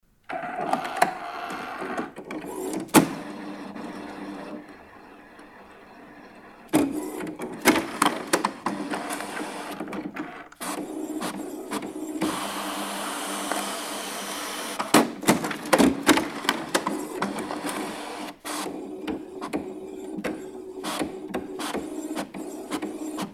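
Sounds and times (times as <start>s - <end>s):
printer printing: 0.3s - 23.3s.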